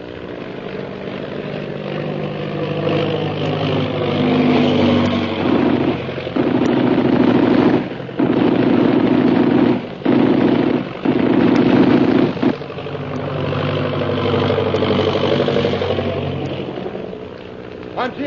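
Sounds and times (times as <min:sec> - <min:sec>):
airplane engine droning: 0:00.0 - 0:18.2
loud bursts of rapid machine-gun fire: 0:04.0 - 0:12.6.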